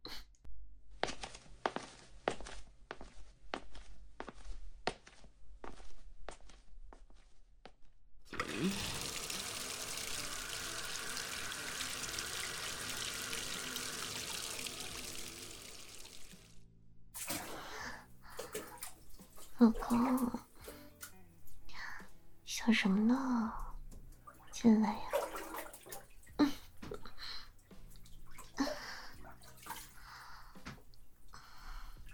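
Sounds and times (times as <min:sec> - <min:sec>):
footsteps: 0:01.0 - 0:07.8
water gushing into a bathtub: 0:08.3 - 0:16.6, 0:17.2 - 0:20.7, 0:24.3 - 0:26.4, 0:28.3 - 0:30.1
speech: 0:19.6 - 0:20.4, 0:22.7 - 0:23.6, 0:24.6 - 0:25.1.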